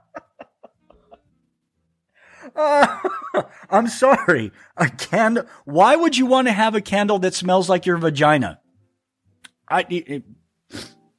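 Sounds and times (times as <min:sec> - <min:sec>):
laughter: 0:00.0 - 0:01.3, 0:02.6 - 0:05.4
speech: 0:02.5 - 0:08.6, 0:09.7 - 0:10.9
nasal sniff: 0:10.7 - 0:11.0.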